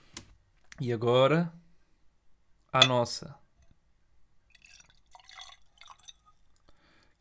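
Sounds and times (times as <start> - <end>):
speech: 0.8 - 1.6, 2.7 - 3.4
drink poured from bottle into small glass: 4.5 - 7.1.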